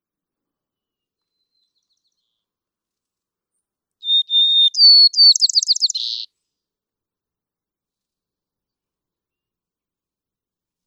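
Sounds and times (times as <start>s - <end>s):
white-crowned sparrow singing: 4.0s - 6.3s.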